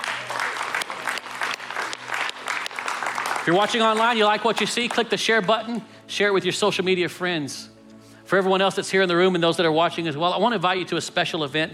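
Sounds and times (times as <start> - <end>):
congregation applauding: 0.0 - 5.1
speech: 3.4 - 7.7, 8.3 - 11.7.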